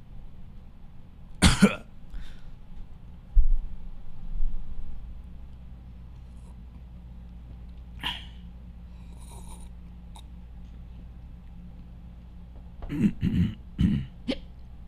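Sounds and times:
faint hum: 0.0 - 14.8
stifled sneeze: 8.0 - 8.4.

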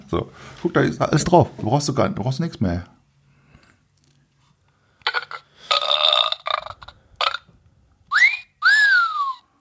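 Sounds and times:
speech: 0.1 - 3.0
rough belching bursts: 5.0 - 7.5
whistles from a sound machine: 8.1 - 9.5.

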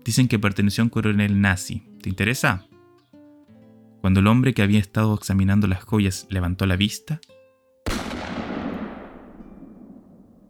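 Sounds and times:
speech: 0.0 - 2.8, 4.0 - 8.0
revolver shot: 7.9 - 10.4.

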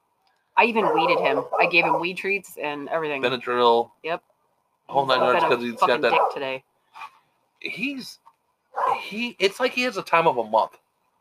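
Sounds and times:
speech: 0.6 - 4.3, 4.9 - 8.2, 8.8 - 10.8
dog barking: 0.7 - 2.2, 5.1 - 6.4, 8.7 - 9.0.

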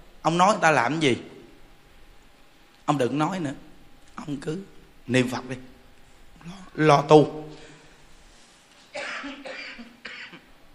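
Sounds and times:
speech: 0.2 - 1.3, 2.9 - 5.7, 6.4 - 7.6
harsh raspy throaty coughs from an itchy throat: 9.0 - 10.5.

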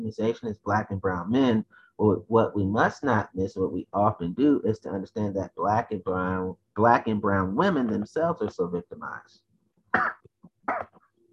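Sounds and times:
speech: 0.1 - 10.9
sharp coughs into an elbow: 9.9 - 11.0.

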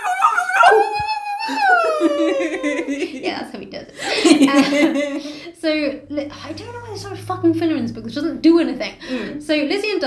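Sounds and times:
person imitating a husky dog howling: 0.0 - 2.9
laughter: 1.5 - 5.5
speech: 4.5 - 10.0.

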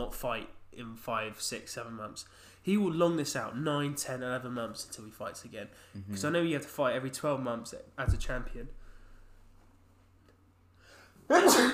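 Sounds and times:
speech: 0.0 - 8.8, 11.3 - 11.7
sneeze: 11.3 - 11.7.

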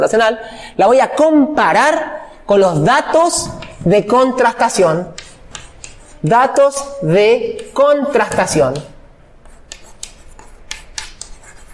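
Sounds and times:
speech: 0.0 - 5.2, 6.2 - 8.9
handwriting during a university lecture: 3.3 - 6.3, 7.5 - 11.7.

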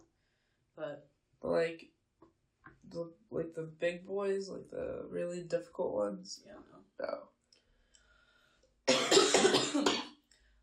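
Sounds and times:
speech: 0.8 - 2.0, 2.9 - 7.3
two people coughing together: 8.9 - 10.0.

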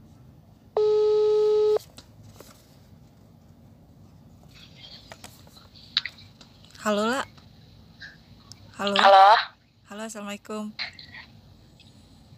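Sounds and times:
loud steady electronic telephone ringback tone: 0.8 - 1.8
quiet phone line hiss: 0.8 - 1.8
speech: 6.8 - 7.3, 8.8 - 10.9.

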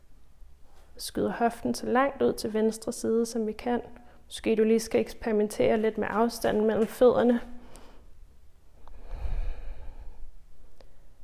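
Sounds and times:
speech: 1.0 - 7.5
long deep breath during a yoga side stretch: 7.6 - 8.2, 8.8 - 11.2.

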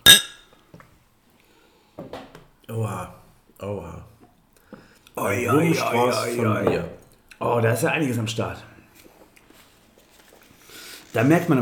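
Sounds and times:
beer glasses of pale ale clinking in a toast: 0.0 - 0.5
speech: 2.7 - 4.1, 5.2 - 8.7, 11.1 - 11.6
rustling handling sounds: 8.9 - 11.6.

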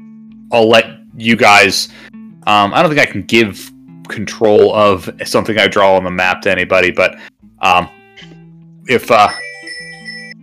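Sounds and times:
speech: 0.5 - 9.4
telephone ringing with electronic ring tones: 9.2 - 10.4.

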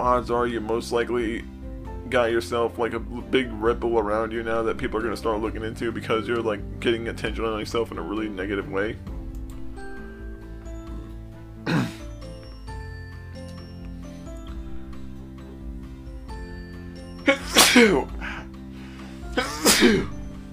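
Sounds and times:
speech: 0.0 - 9.1, 17.8 - 18.2
person sneezing: 11.7 - 12.0, 17.3 - 18.4, 19.4 - 20.1.

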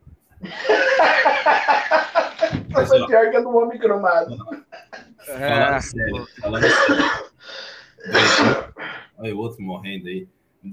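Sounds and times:
laughter: 0.4 - 3.1, 4.3 - 7.3
speech: 3.0 - 4.6, 5.3 - 7.3, 8.0 - 8.6, 9.2 - 10.7
loud cough: 6.5 - 7.3, 8.0 - 8.8
harsh breathy gasps: 7.4 - 8.1.

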